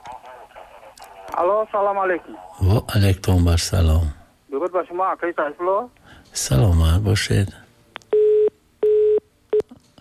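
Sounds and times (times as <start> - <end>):
speech: 1.3 - 7.6
telephone busy tone after a call line disconnects: 8.2 - 9.2.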